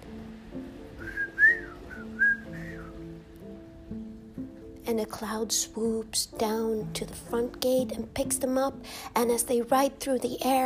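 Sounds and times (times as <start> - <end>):
soft sustained musical background: 0.0 - 10.6
person whistling a short lilting tune: 1.0 - 3.0
speech: 4.9 - 10.6.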